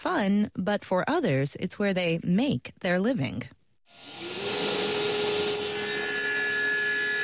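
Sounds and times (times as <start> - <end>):
speech: 0.0 - 4.3
power saw cutting through wood in a wood shop: 3.9 - 7.2.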